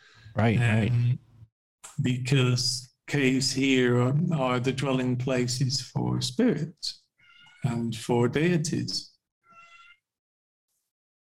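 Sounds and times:
speech: 0.4s - 1.2s, 2.0s - 7.0s, 7.6s - 9.1s
cat meowing: 7.2s - 7.8s, 9.5s - 10.0s.

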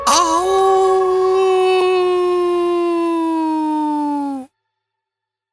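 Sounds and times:
dog howling: 0.1s - 4.5s.

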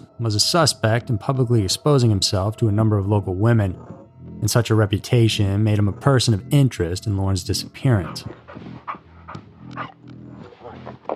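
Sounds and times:
speech: 0.2s - 8.7s
dog yelping: 8.1s - 10.1s.

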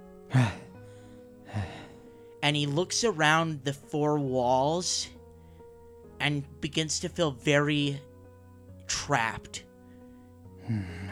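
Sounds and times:
quiet breathing: 0.2s - 2.4s, 5.2s - 6.0s, 9.8s - 11.1s
person gasping for air: 0.3s - 2.1s, 10.6s - 11.1s
speech: 2.5s - 5.2s, 6.2s - 8.1s, 9.1s - 9.7s, 10.7s - 11.0s.

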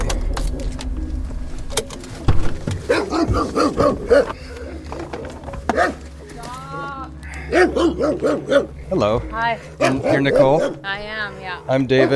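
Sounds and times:
steady outdoor noise: 0.0s - 12.1s
Rottweiler barking: 2.9s - 4.4s, 5.7s - 6.0s, 7.4s - 8.8s, 9.8s - 11.0s, 11.9s - 12.1s
speech: 3.4s - 4.4s, 7.5s - 12.1s.

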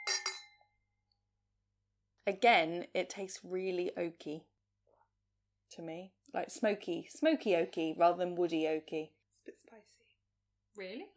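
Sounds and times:
glasses clinking in a toast: 0.0s - 0.6s
speech: 2.3s - 4.5s, 5.7s - 10.1s, 10.8s - 11.1s.

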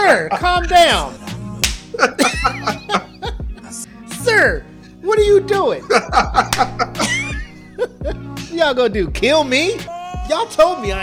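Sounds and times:
speech: 0.1s - 1.2s, 2.0s - 3.0s, 4.3s - 7.2s, 8.1s - 11.0s
sharp slaps: 1.6s - 2.0s, 6.5s - 7.3s
people laughing: 1.9s - 3.8s, 5.8s - 8.7s.

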